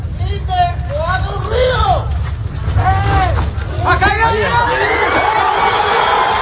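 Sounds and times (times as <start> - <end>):
constant low rumble: 0.0 - 6.4
crowd cheering excitedly at a rescue: 2.8 - 6.4.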